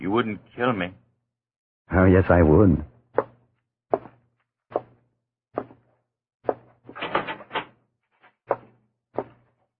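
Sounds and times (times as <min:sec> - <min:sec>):
speech: 0:00.1 - 0:01.0, 0:01.9 - 0:03.3
heavy cell door clanking and thudding shut: 0:06.9 - 0:07.7.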